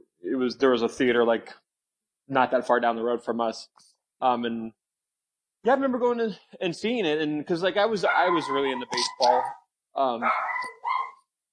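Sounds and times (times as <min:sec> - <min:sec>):
speech: 0:00.4 - 0:01.6, 0:02.3 - 0:04.8, 0:05.6 - 0:10.7
dog barking: 0:08.0 - 0:09.6, 0:10.2 - 0:11.2.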